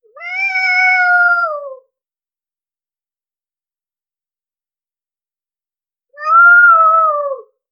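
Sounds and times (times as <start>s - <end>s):
high pitched playful cat meowing: 0.1s - 1.8s, 6.2s - 7.5s.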